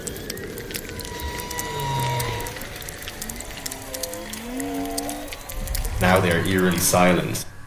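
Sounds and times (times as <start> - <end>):
underwater crackling clicks: 0.0 - 7.4
whale song with gliding moans: 0.0 - 7.6
speech: 6.0 - 7.5.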